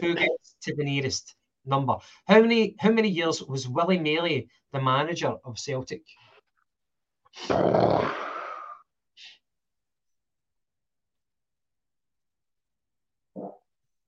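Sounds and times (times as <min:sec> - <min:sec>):
speech: 0:00.0 - 0:06.2, 0:07.3 - 0:08.3
loud raspy fart: 0:07.5 - 0:08.4, 0:13.3 - 0:13.7.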